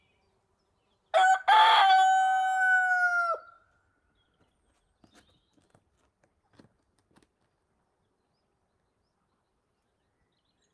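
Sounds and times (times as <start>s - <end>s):
rooster crowing in the countryside during the day: 1.1s - 3.6s.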